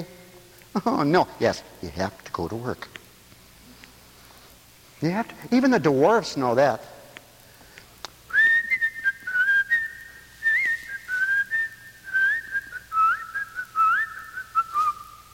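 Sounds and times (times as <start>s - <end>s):
faint low hum: 0.0s - 15.3s
speech: 0.8s - 3.0s, 5.0s - 6.9s
person whistling a bouncy upbeat melody: 8.3s - 15.2s.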